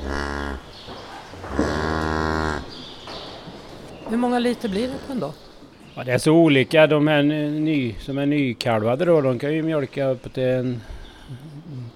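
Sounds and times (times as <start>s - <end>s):
dairy cows mooing in a barn: 0.0s - 0.8s, 1.4s - 2.7s
speech: 4.1s - 11.5s.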